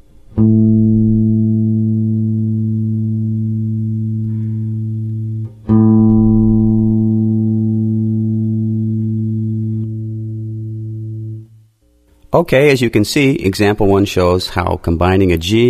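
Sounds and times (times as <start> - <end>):
guitar playing an open A note for tuning: 0.4 - 11.6
speech: 12.4 - 15.6.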